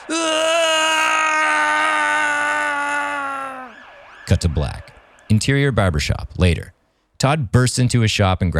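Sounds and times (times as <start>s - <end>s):
man screaming in agony: 0.0s - 3.8s
speech: 4.3s - 8.5s.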